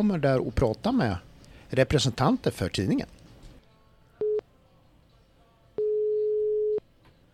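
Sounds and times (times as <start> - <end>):
speech: 0.0 - 3.2
single-pitch phone ringback tone while phoning a magazine: 5.8 - 6.8.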